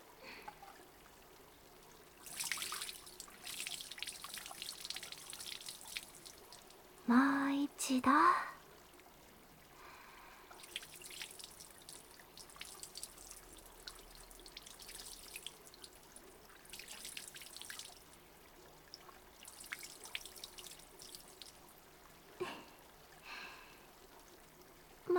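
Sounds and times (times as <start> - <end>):
water dripping, trickling and splashing: 0.3 - 25.1
water poured over a person's back during a bath: 2.1 - 6.8, 10.5 - 18.2, 19.2 - 21.7
speech: 7.9 - 8.5.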